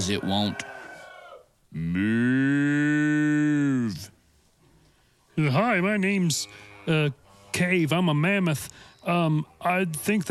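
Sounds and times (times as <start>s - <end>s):
speech: 0.0s - 0.7s, 1.7s - 2.8s, 5.4s - 10.2s
cow mooing: 1.8s - 4.0s, 6.3s - 7.6s.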